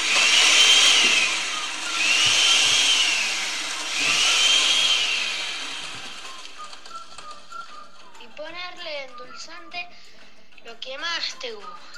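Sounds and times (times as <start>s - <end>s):
electric blender blending peeled cubed apples with lemon juice: 0.0s - 8.2s.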